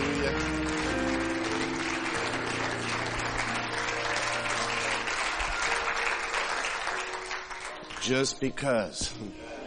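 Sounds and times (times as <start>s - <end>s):
crowd clapping for the Lord: 0.0s - 8.4s
speech: 8.1s - 9.5s.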